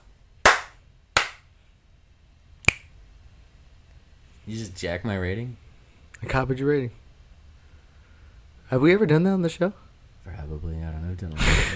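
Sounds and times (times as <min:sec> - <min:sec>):
sharp hand slaps on a microphone: 0:02.6 - 0:02.9
speech: 0:04.5 - 0:05.6, 0:06.2 - 0:07.0, 0:08.7 - 0:11.7.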